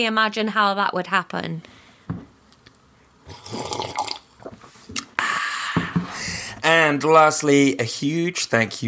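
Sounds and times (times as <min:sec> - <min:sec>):
speech: 0:00.0 - 0:01.8, 0:06.7 - 0:08.8
loud wet slurping of drinking water: 0:03.2 - 0:05.1.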